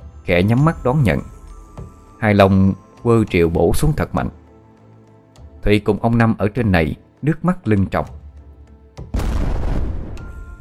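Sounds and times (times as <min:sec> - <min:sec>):
speech: 0:00.3 - 0:01.3, 0:02.2 - 0:04.4, 0:05.6 - 0:08.2
deep explosion sending a column of water high into the air: 0:09.2 - 0:10.5.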